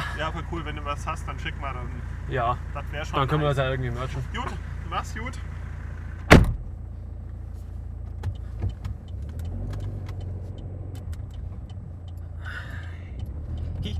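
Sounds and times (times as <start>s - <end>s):
steady low car engine rumble heard from inside a car: 0.0s - 13.9s
speech: 0.2s - 5.5s
sharp door-like thump: 6.3s - 6.7s
small clicks: 8.2s - 12.3s.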